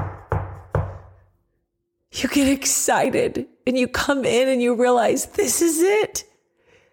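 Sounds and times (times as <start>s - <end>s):
knocking on a door in a reverberant space: 0.0s - 1.0s
speech: 2.2s - 6.3s.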